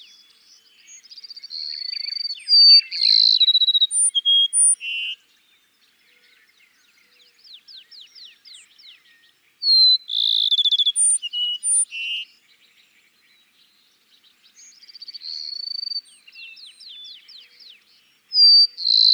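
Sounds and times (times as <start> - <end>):
Cassin's sparrow singing a trill and whistled notes: 0.0 - 5.2, 7.1 - 12.4, 14.5 - 19.1.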